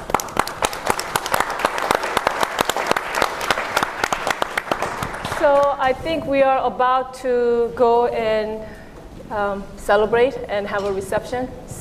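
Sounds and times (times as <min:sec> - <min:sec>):
roomful of people applauding: 0:00.0 - 0:05.7
speech: 0:05.4 - 0:11.7.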